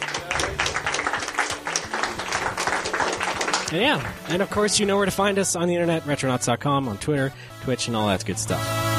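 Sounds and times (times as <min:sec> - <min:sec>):
live audience applauding: 0:00.0 - 0:04.7
speech: 0:03.7 - 0:08.8.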